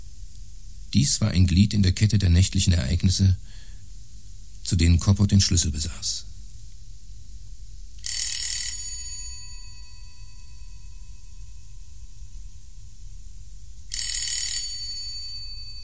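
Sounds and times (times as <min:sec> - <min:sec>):
low steady hum: 0:00.0 - 0:08.1, 0:08.7 - 0:14.0, 0:14.6 - 0:15.8
speech: 0:00.9 - 0:03.6, 0:04.7 - 0:06.3
electric doorbell ringing: 0:08.0 - 0:11.5, 0:13.9 - 0:15.8.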